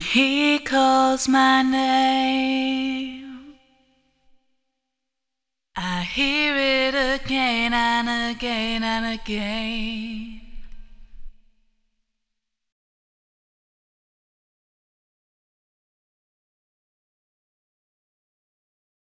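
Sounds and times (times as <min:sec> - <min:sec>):
panned voice with three-way EQ: 0:00.0 - 0:03.6, 0:05.8 - 0:11.1.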